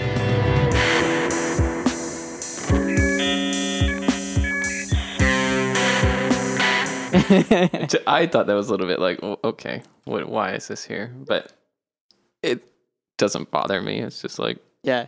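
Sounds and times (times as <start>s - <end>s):
sustained synth notes in electronic music: 0.3s - 7.2s
dial-up modem tones and handshake chirps: 2.7s - 5.4s
laughter: 7.1s - 8.1s
speech: 7.2s - 11.6s, 12.4s - 15.0s.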